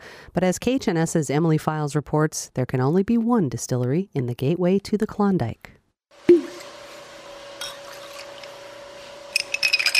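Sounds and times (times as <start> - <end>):
speech: 0.4 - 6.3
cocktail being stirred, ice or spoon clinking against glass: 7.6 - 8.5, 9.3 - 9.9.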